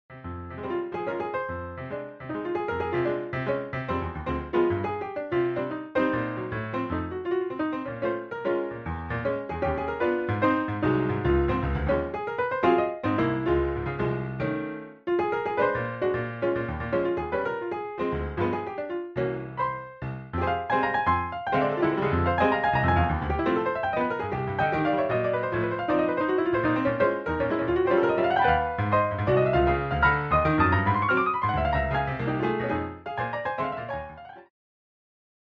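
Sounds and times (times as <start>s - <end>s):
Yamaha C7 grand piano: 0.1s - 34.5s.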